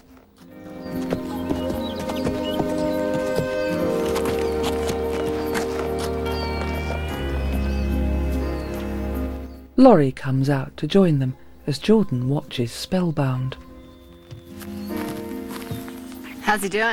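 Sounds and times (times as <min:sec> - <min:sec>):
horse walking with hooves clip-clopping: 0:00.0 - 0:09.5, 0:13.5 - 0:16.9
sustained tonal music: 0:00.0 - 0:16.9
speech: 0:09.8 - 0:13.6, 0:16.5 - 0:16.9.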